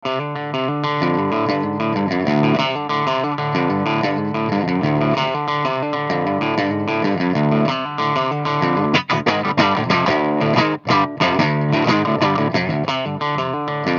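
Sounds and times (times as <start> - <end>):
small power amplifier recorded through a cabinet and microphone: 0.0 - 13.9.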